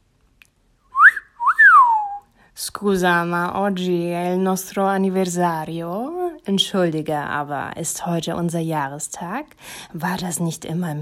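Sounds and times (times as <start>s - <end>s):
man wolf whistling: 0.9s - 2.3s
speech: 2.6s - 11.0s.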